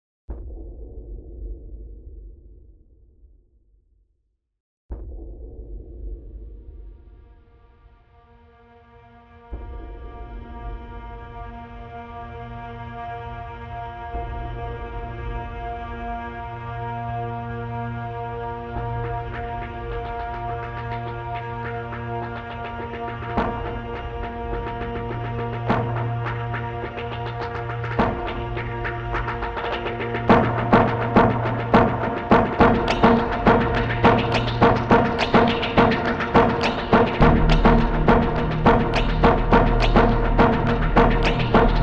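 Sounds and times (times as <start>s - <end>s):
session noise: 19.8s - 41.8s.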